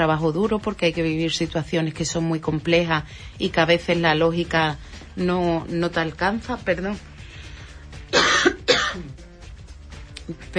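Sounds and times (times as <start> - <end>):
speech: 0.0 - 7.1, 10.3 - 10.5
person coughing harshly: 8.1 - 9.2.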